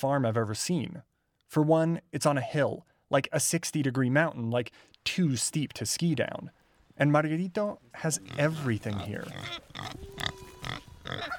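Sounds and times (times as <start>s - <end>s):
speech: 0.0s - 11.3s
pig grunting in short snuffly bursts: 8.2s - 11.3s.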